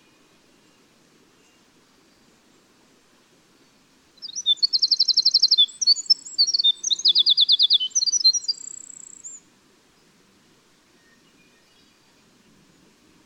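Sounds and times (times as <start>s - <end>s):
winter wren singing: 4.2s - 9.4s.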